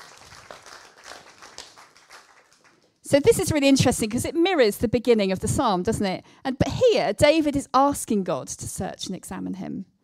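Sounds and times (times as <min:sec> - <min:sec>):
crowd applauding: 0:00.0 - 0:03.0
speech: 0:03.1 - 0:09.9.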